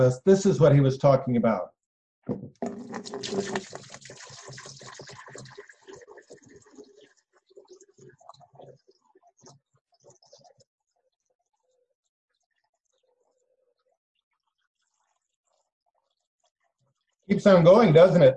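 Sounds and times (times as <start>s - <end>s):
speech: 0.0s - 4.6s, 17.3s - 18.3s
water pouring from a container: 2.6s - 9.0s.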